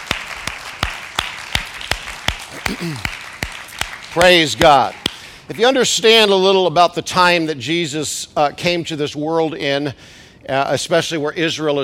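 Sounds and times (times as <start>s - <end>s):
crowd clapping hands in unison after a prayer: 0.0s - 5.4s
speech: 2.7s - 3.2s, 4.2s - 11.8s.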